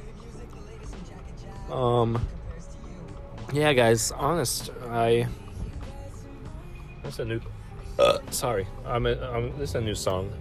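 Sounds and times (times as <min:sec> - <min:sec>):
speech: 0:01.7 - 0:02.4, 0:03.5 - 0:05.4, 0:07.0 - 0:10.3
loud burp: 0:08.0 - 0:08.4.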